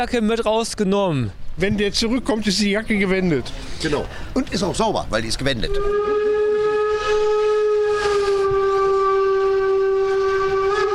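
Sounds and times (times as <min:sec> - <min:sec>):
speech: 0:00.0 - 0:06.3
locomotive rolling past on a chilly day: 0:01.3 - 0:10.9
locomotive horn blast: 0:05.6 - 0:10.9.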